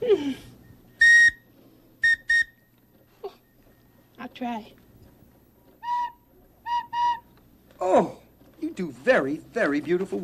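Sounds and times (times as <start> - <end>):
small bird-shaped wooden whistle being blown: 0.9 - 2.7, 5.8 - 7.4
speech: 4.4 - 4.8, 8.8 - 10.2.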